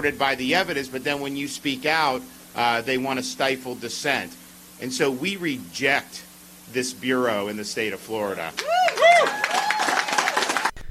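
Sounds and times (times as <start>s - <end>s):
speech: 0.0s - 9.4s
crowd whooping and cheering: 8.6s - 10.7s
crowd applauding: 8.6s - 10.8s.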